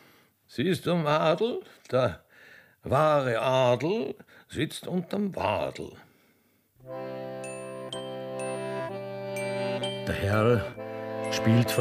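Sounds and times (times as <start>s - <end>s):
speech: 0.6s - 2.2s, 2.8s - 6.1s, 6.8s - 7.3s, 10.1s - 11.7s
distant herd bells ringing: 7.4s - 11.7s.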